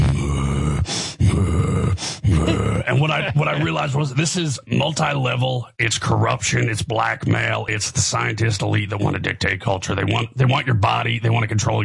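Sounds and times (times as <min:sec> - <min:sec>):
voice imitating ritual deep breathing of old men: 0:00.0 - 0:03.7
laughter: 0:02.3 - 0:04.2
speech: 0:02.9 - 0:11.8.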